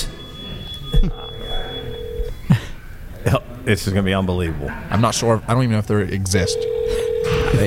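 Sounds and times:
telephone call ringing on speakerphone: 0:00.9 - 0:02.3, 0:06.4 - 0:07.6
speech: 0:01.0 - 0:01.2, 0:03.2 - 0:07.6.

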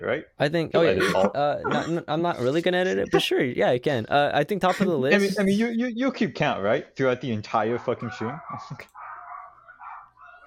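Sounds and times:
speech: 0:00.0 - 0:09.0
laughter: 0:00.8 - 0:03.3, 0:04.6 - 0:05.7
dogs barking and yelping: 0:07.8 - 0:10.4.

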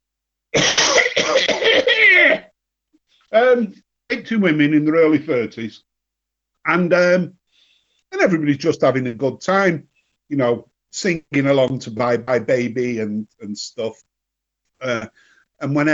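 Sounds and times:
harsh coughs: 0:00.5 - 0:02.5
speech: 0:03.4 - 0:05.9, 0:06.6 - 0:07.4, 0:08.2 - 0:14.1, 0:14.8 - 0:15.9.

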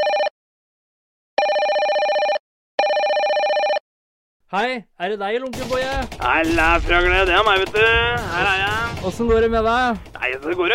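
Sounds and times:
telephone bell ringing: 0:00.0 - 0:00.3, 0:01.4 - 0:03.8
speech: 0:04.5 - 0:10.7.

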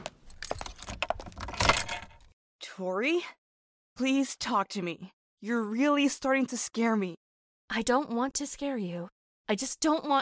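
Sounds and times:
keys on a key ring jangling and clinking: 0:00.2 - 0:02.3
speech: 0:02.8 - 0:03.4, 0:04.0 - 0:10.2.

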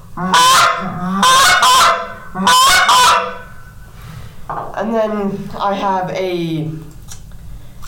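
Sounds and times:
short-reed goose call blown in raspy honks: 0:00.0 - 0:03.8
speech: 0:00.2 - 0:01.2, 0:02.4 - 0:02.6, 0:04.8 - 0:06.9.

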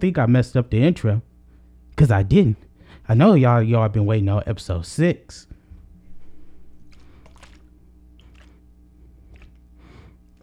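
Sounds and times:
speech: 0:00.0 - 0:01.3, 0:02.0 - 0:05.6
low steady hum: 0:00.0 - 0:10.4
Gatorade spilling onto a person with wet squishy splashes and drips: 0:06.1 - 0:10.4.

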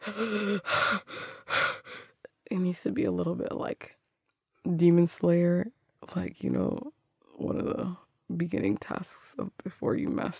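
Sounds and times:
heavy rapid raspy panting breaths: 0:00.0 - 0:02.2
speech: 0:00.1 - 0:01.3, 0:02.5 - 0:04.0, 0:04.6 - 0:10.3.

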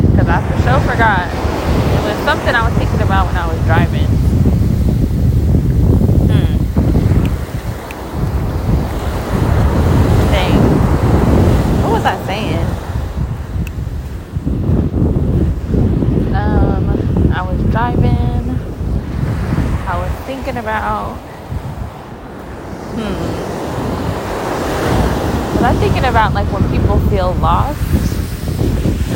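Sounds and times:
ocean waves breaking on a shore: 0:00.0 - 0:29.1
wind buffeting the microphone: 0:00.0 - 0:29.1
speech: 0:00.7 - 0:01.4, 0:02.3 - 0:04.2, 0:25.6 - 0:28.0.

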